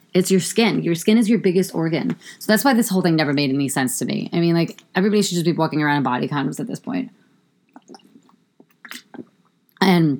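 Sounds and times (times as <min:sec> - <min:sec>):
speech: 0:00.2 - 0:07.2, 0:08.9 - 0:10.1
person gulping bottled water: 0:07.7 - 0:09.5.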